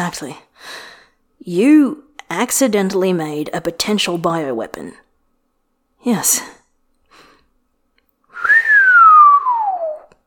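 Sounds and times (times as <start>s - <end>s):
speech: 0.0s - 5.0s, 6.0s - 6.6s
long low human whistle: 8.3s - 10.2s.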